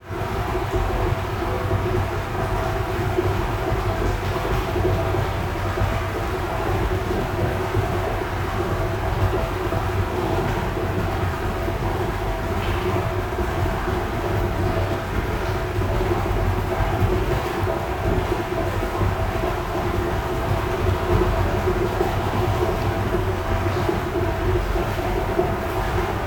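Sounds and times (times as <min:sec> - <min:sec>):
big water tank filling: 0:00.3 - 0:26.2.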